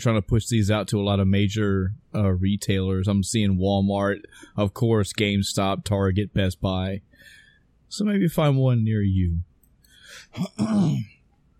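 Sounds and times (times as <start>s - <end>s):
speech: 0.0s - 9.5s, 10.1s - 11.2s
person clearing throat: 10.3s - 11.2s.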